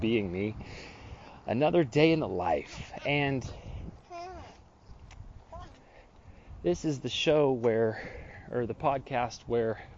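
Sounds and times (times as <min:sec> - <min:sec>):
speech: 0:00.0 - 0:03.6, 0:06.6 - 0:09.9
baby squawking and babbling: 0:04.1 - 0:04.6, 0:05.5 - 0:05.8.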